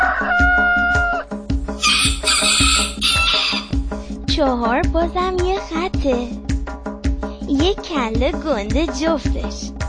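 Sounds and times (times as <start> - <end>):
roosters crowing at dawn: 0.0 - 3.8
bouncy music beat with thumping drums: 0.0 - 9.8
speech: 4.4 - 6.4, 7.6 - 9.7.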